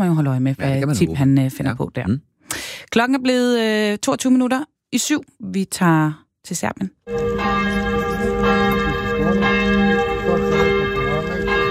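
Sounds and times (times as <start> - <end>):
speech: 0.0 - 7.8, 8.4 - 10.0
church bells ringing in a steady peal: 7.1 - 11.7.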